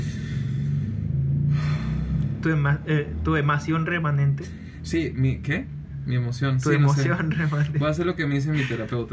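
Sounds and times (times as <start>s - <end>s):
deep breath drawn by a rushed person: 0.0s - 2.4s
speech: 2.4s - 9.1s.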